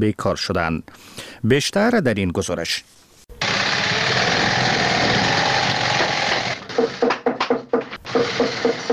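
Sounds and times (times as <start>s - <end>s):
speech: 0.0s - 3.0s
sewing machines whirring in a shoe factory: 3.4s - 7.0s, 8.0s - 8.9s
hammering taps in a shoe factory: 6.0s - 8.9s.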